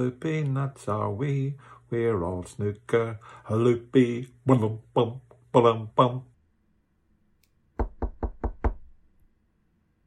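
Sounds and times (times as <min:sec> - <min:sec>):
speech: 0:00.0 - 0:06.3
firm knocks on a wooden door: 0:07.8 - 0:09.0.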